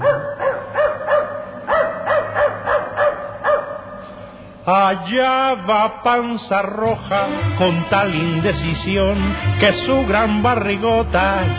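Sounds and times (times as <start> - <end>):
dog barking: 0.0 - 4.0
speech: 4.7 - 11.5.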